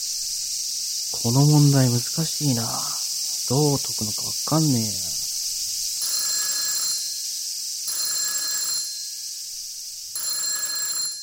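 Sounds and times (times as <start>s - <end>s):
speech: 1.1s - 5.1s
telephone ringing with a buzzing electronic trill: 6.0s - 7.2s, 7.9s - 9.3s, 10.2s - 11.2s.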